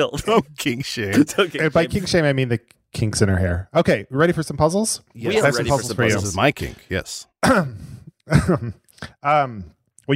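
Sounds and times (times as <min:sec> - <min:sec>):
speech: 0:00.0 - 0:10.1
cough into a microphone: 0:07.4 - 0:09.2.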